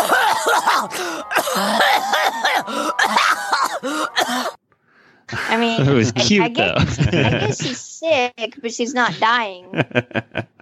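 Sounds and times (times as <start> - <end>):
laughter: 0.0 - 4.1, 5.8 - 7.8, 8.9 - 10.6
cartoon character coughing: 0.0 - 4.6
speech: 0.8 - 1.9, 5.7 - 10.5.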